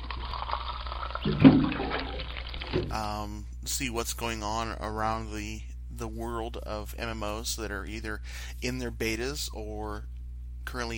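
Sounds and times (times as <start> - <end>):
water cooler gurgling: 0.0 - 3.1
speech: 1.2 - 1.9, 2.9 - 10.9.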